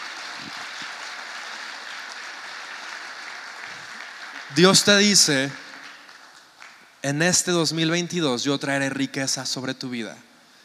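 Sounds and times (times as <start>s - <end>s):
church audience applause: 0.0s - 7.0s
speech: 4.5s - 5.6s, 7.0s - 10.3s.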